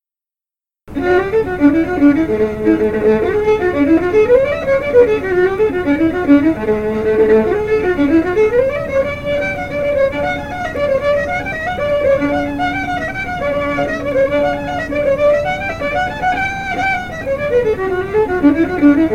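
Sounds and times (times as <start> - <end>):
Irish reel on fiddle: 0.9 - 19.1.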